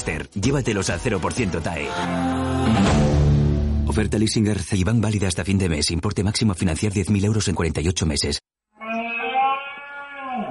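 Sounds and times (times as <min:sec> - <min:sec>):
speech: 0:00.0 - 0:03.2, 0:03.9 - 0:08.4
red deer stag rutting bellow: 0:08.8 - 0:10.4.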